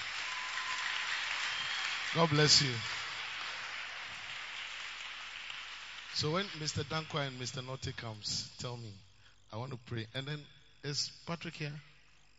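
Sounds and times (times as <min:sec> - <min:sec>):
congregation clapping: 0:00.0 - 0:07.3
speech: 0:02.2 - 0:03.0, 0:06.2 - 0:11.9.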